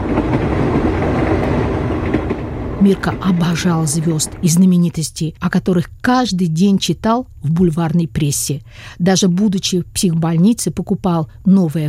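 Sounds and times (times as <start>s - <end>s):
express train braking on rails approaching Trnava station: 0.0s - 4.8s
speech: 2.8s - 11.8s.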